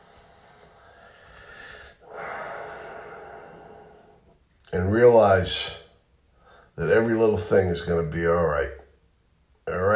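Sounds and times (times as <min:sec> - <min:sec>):
deep breath: 0:00.0 - 0:04.4, 0:06.3 - 0:06.8
speech: 0:04.7 - 0:05.8, 0:06.8 - 0:08.8.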